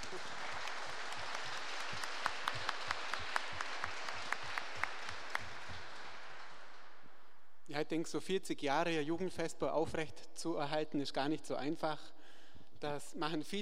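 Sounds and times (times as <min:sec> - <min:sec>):
audience applauding: 0:00.0 - 0:07.1
speech: 0:07.8 - 0:12.2, 0:12.8 - 0:13.6.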